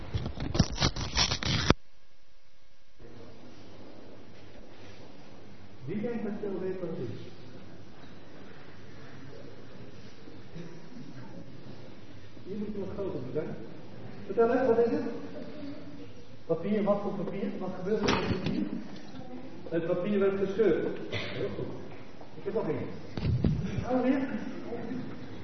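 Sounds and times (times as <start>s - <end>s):
paper being torn: 0.2s - 1.8s
quiet voices murmuring: 5.9s - 25.4s.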